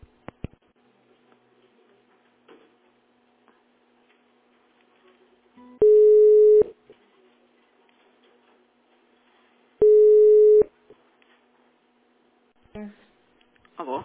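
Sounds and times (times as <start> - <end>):
telephone line beeps after a call was cut off: 5.8 - 6.7, 9.8 - 10.7.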